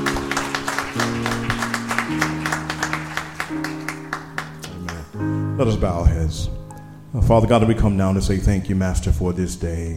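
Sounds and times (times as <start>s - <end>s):
audience clapping hands in praise to God: 0.0s - 5.2s
sustained organ or keyboard chords: 0.0s - 8.3s
speech: 1.0s - 1.4s, 5.6s - 9.9s.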